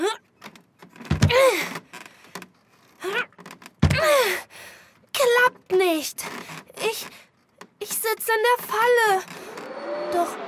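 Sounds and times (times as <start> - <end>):
stuck door creaking and scuffing: 0.3 - 4.3, 6.2 - 10.0
heavy kicks thudding against a stuck door: 1.0 - 1.5, 3.8 - 4.2
speech: 6.0 - 6.4, 8.1 - 10.4.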